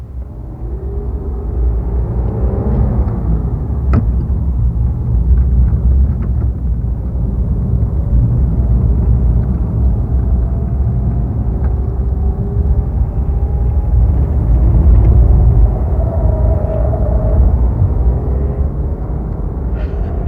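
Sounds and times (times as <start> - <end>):
car engine rumbling as the car pulls away and drives along city streets: 0.0 - 20.2.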